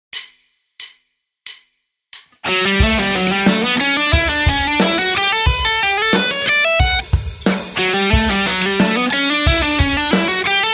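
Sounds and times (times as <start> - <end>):
slow musical lick: 2.4 - 6.6, 7.7 - 10.6.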